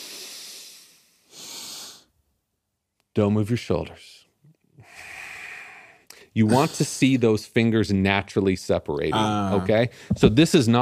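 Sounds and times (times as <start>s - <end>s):
deep breath drawn in during a guided breathing exercise: 0.0s - 2.1s, 4.8s - 6.4s, 9.9s - 10.2s
speech: 3.2s - 4.2s, 6.4s - 10.8s.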